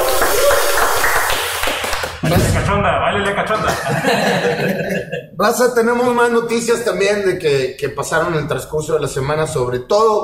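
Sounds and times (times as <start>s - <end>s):
hands clapping in applause: 0.0s - 2.2s
speech: 2.3s - 10.2s
laughter: 3.2s - 5.4s.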